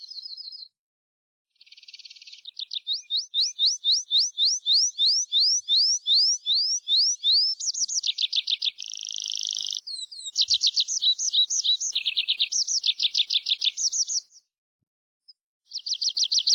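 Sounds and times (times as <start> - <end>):
Tree pipit singing: 2.5 - 14.4, 15.7 - 16.5.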